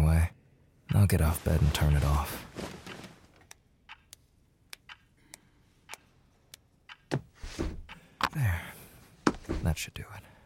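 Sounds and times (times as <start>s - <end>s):
speech: 0.2s - 2.8s, 9.8s - 10.3s
rustling or shuffling noise: 1.2s - 3.4s
loud clock ticking: 3.9s - 4.2s, 4.8s - 5.1s, 6.9s - 7.2s.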